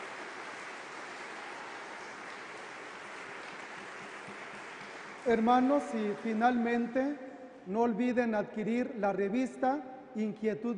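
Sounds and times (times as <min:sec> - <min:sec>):
audience applause: 0:00.0 - 0:06.9
speech: 0:05.2 - 0:10.7.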